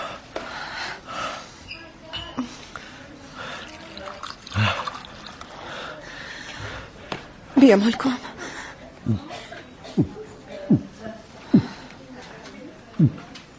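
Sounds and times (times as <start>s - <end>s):
faint hum: 0.0s - 13.5s
water poured into a glass: 3.4s - 5.6s
speech: 7.6s - 8.3s, 9.1s - 9.3s, 10.0s - 10.9s, 13.0s - 13.2s.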